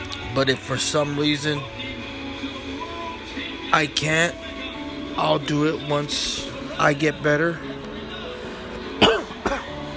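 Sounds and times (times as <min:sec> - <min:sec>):
speech: 0:00.4 - 0:01.9, 0:03.7 - 0:04.5, 0:05.2 - 0:07.8
person coughing: 0:09.0 - 0:09.8.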